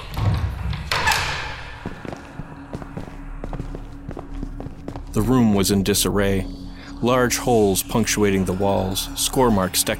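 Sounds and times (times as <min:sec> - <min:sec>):
heavy iron door opening slowly: 0:00.0 - 0:01.9
speech: 0:05.2 - 0:09.9.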